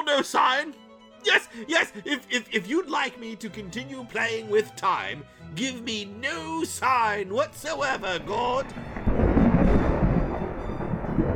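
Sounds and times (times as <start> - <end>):
speech: 0.1 - 8.9
deep continuous rumble of thunder from an incoming storm: 7.6 - 11.3.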